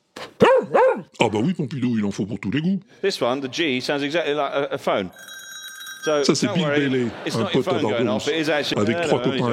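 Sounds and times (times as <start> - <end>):
speech: 1.2 - 5.4, 6.0 - 9.5
melody played on alpine cowbells: 5.1 - 6.7
laughter: 6.2 - 9.5.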